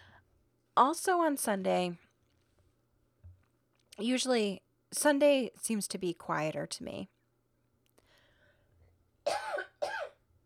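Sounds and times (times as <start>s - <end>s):
speech: 0.8s - 2.0s, 4.0s - 7.2s
person coughing from a tickle in the throat: 9.3s - 10.2s.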